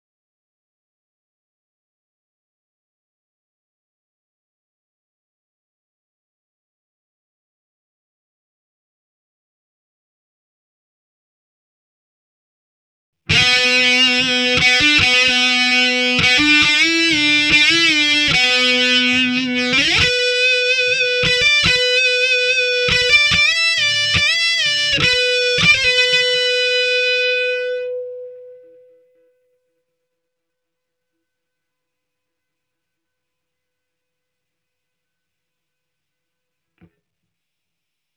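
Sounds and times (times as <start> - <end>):
guitar intro with count-in: 13.3 - 29.2.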